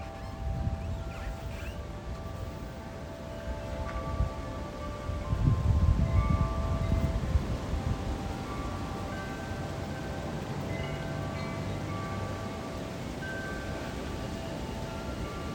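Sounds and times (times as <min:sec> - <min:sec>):
road noise: 0:00.0 - 0:15.5
wind chimes ringing outdoors at night: 0:00.0 - 0:15.5.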